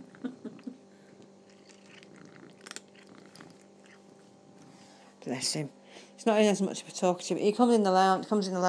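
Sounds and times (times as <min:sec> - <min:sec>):
cat purring: 0:01.3 - 0:04.8
cat crunching dry biscuit treats with a creamy filling: 0:01.4 - 0:04.2
speech: 0:05.3 - 0:08.6.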